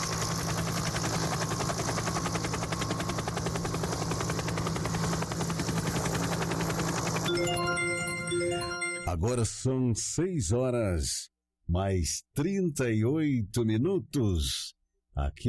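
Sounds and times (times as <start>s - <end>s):
descending helicopter rotor blades chopping over engine drone: 0.0s - 7.4s
bright tonal sound: 7.3s - 9.1s
speech: 9.2s - 15.4s.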